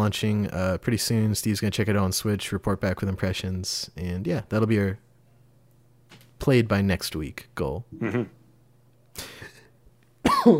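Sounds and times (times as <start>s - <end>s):
speech: 0.0s - 5.1s, 6.4s - 8.4s
person coughing after choking on saliva: 8.0s - 8.3s, 10.2s - 10.5s.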